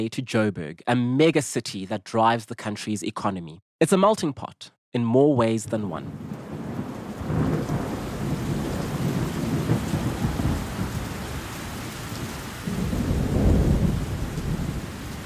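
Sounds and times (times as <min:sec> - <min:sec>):
speech: 0:00.0 - 0:06.4
deep thunder rumbling and rolling: 0:06.0 - 0:15.2
steady rain: 0:06.1 - 0:15.2.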